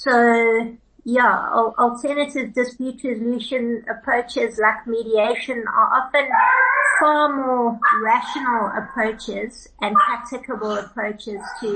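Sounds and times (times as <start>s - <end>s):
speech: 0.0s - 11.7s
dog barking and whining: 6.3s - 7.2s, 7.8s - 9.2s, 9.9s - 11.7s.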